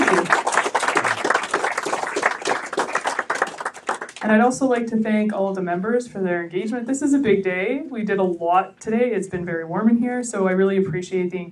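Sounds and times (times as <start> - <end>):
crowd applauding: 0.0 - 4.2
speech: 4.3 - 11.4.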